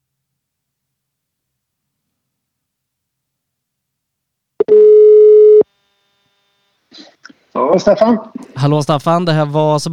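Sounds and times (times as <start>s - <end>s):
loud slightly buzzy telephone ringback tone: 4.6s - 5.6s
speech: 7.6s - 9.9s.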